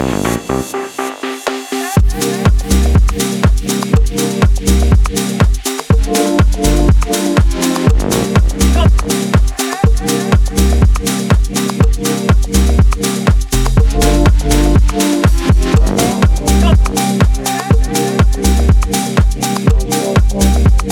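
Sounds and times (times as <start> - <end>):
chill lounge music loop: 0.0 - 20.9.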